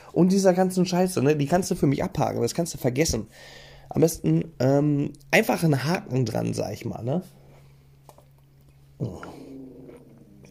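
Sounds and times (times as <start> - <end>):
faint hum: 0.0 - 10.4
speech: 0.2 - 7.4, 9.0 - 9.3
dog growling: 9.0 - 10.4.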